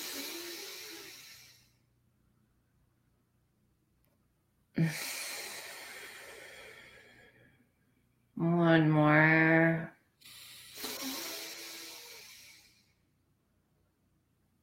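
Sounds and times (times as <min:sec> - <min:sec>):
deep breathing through both nostrils during a guided breathing exercise: 0:00.0 - 0:01.8, 0:04.8 - 0:07.7, 0:10.2 - 0:13.0
speech: 0:04.8 - 0:05.0, 0:08.4 - 0:09.1.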